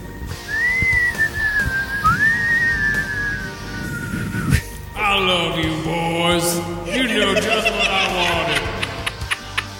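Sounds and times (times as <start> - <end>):
person whistling a tune: 0.4 - 4.7
speech: 5.2 - 7.7
laughter: 6.9 - 9.7.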